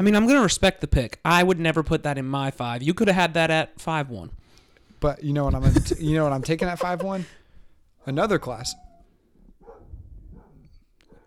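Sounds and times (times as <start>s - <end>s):
speech: 0.0s - 4.4s, 5.0s - 7.4s, 8.0s - 8.8s
laughter: 5.6s - 7.4s
dog barking in short bursts: 9.6s - 11.2s.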